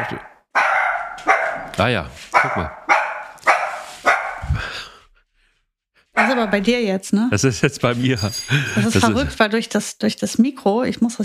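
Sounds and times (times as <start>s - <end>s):
dog barking sharply: 0.0s - 4.6s, 6.2s - 6.6s
speech: 1.8s - 2.8s, 6.4s - 11.2s
laughter: 7.4s - 9.4s.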